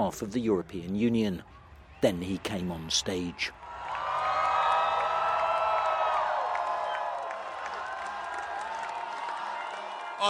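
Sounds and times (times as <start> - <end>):
speech: 0.0 - 3.6
large crowd cheering and roaring: 1.7 - 10.2
whoops and shouts from the crowd: 3.6 - 10.2.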